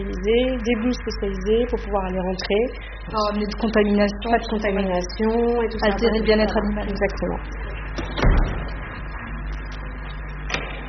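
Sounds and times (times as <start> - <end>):
steady mechanical hum: 0.0 - 10.8
speech: 0.2 - 8.2
airlock door of an animal facility bumping open: 8.0 - 8.9.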